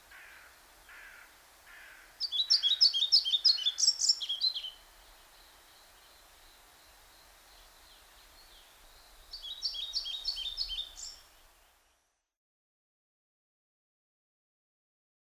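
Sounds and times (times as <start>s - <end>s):
European pied flycatcher Ficedula hypoleuca singing: 2.2s - 11.9s.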